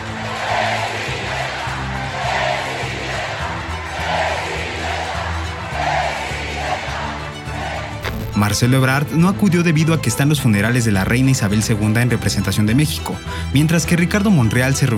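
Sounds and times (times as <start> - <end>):
large crowd of party supporters cheering and booing at political rally in Mexico: 0.0 - 8.5
speech: 8.4 - 14.9.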